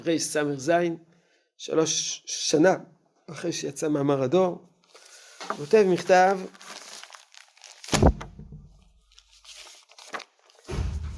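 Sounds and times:
speech: 0.0s - 4.7s, 5.5s - 6.6s
sheets of paper rustling as they are handed out: 4.9s - 10.7s.

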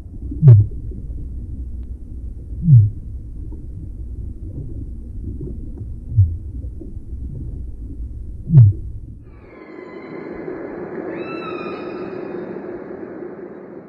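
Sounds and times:
steady low underwater rumble: 0.0s - 13.8s
humpback whale disco call pulses underwater: 8.5s - 12.8s
higher wavering tonal whine of humpback whale: 8.5s - 13.8s.

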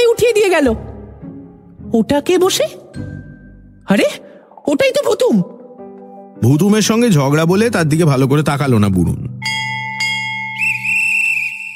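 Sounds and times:
speech: 0.4s - 0.9s, 1.9s - 3.1s, 3.9s - 5.6s, 6.4s - 9.8s
train station bell ting: 9.4s - 10.8s
guard's whistle blowing: 10.3s - 11.7s.

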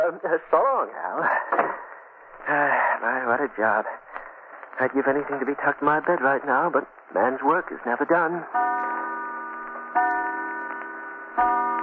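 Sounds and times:
speech: 0.1s - 4.1s, 4.8s - 8.7s
clock striking with resonant ringing chimes: 8.5s - 11.8s.

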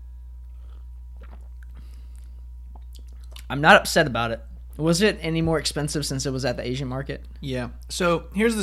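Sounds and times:
low hum: 0.0s - 8.6s
slurping sips of beer: 0.5s - 3.4s
speech: 3.5s - 8.6s.

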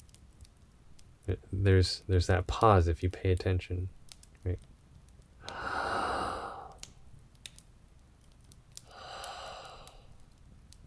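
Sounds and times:
speech: 1.3s - 4.7s
emphasized slow deliberate inhale and exhale: 5.4s - 7.0s, 8.8s - 10.4s.

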